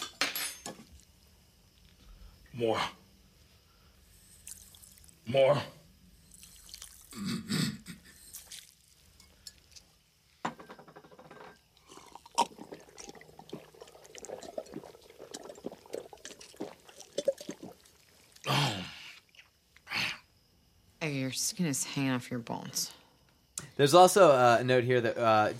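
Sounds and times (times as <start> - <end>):
speech: 2.6 - 3.0, 5.3 - 5.8, 7.2 - 7.5, 21.4 - 23.0, 23.8 - 25.5
sugar water being poured: 6.3 - 7.2, 11.9 - 18.5
sugar water being greedily gulped: 11.8 - 18.6
sugar water sloshing and dripping: 12.3 - 18.5.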